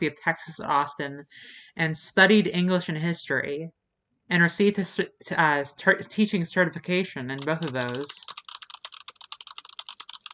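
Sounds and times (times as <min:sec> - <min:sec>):
speech: 0:00.0 - 0:08.4
rapid typing on a computer keyboard: 0:07.4 - 0:10.3.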